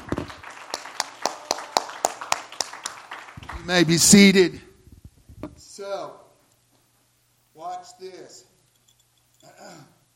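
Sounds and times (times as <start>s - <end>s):
audience clapping hands in a steady quick rhythm: 0.0s - 4.4s
speech: 3.7s - 4.6s, 7.8s - 8.5s.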